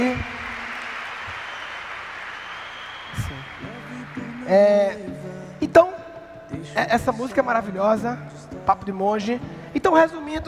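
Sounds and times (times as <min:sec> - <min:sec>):
dense applause with heavy reverb: 0:00.0 - 0:05.3
speech: 0:04.5 - 0:05.1, 0:06.8 - 0:10.4.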